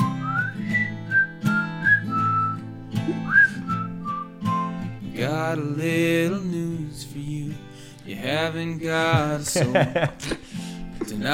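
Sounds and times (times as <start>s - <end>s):
person whistling a tune: 0.0s - 5.0s
musical backing with low sustained tones and percussive hits: 0.0s - 11.3s
speech: 5.2s - 10.4s, 11.2s - 11.3s
laughter: 8.9s - 11.2s.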